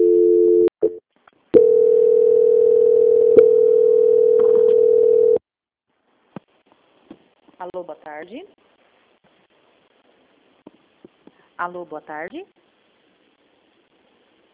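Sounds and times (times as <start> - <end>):
steady mid-pitched telephone line tone during a call transfer: 0.0 - 1.0, 1.6 - 5.4
telephone line clicks: 4.3 - 5.0
speech: 7.8 - 8.6, 11.6 - 12.6.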